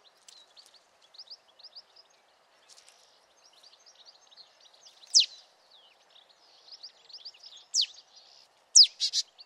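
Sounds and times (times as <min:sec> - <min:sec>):
Marsh tit Poecile palustris calls: 0:05.0 - 0:05.3, 0:08.8 - 0:09.2.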